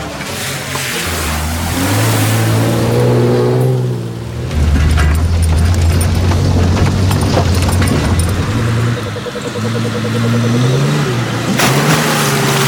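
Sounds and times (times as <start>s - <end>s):
water splashing around a car: 0.0s - 8.6s
car engine droning and revving: 0.1s - 12.6s.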